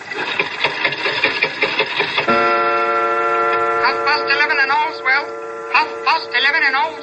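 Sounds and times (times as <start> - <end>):
old London clock made in 1752 ticking as its hand is pushed forward: 0.0 - 7.0
sustained warbling ringing tone: 2.0 - 7.0.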